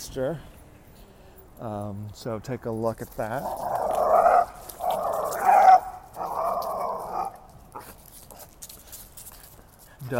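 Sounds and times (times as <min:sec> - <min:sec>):
speech: 0:00.1 - 0:00.5, 0:01.6 - 0:04.2
small dog whiny barking while playing with bigger dogs on a walk: 0:04.0 - 0:07.9.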